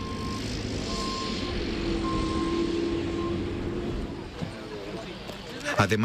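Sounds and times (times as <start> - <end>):
high reversing beeps: 0.0 - 4.4
heavy diesel engine of a telescopic loader running: 0.0 - 6.0.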